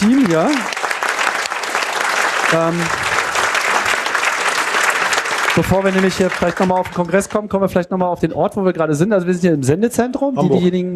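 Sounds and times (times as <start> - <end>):
audience applauding the audio team: 0.0 - 7.8
speech: 0.3 - 0.8, 2.5 - 3.0, 5.6 - 10.9.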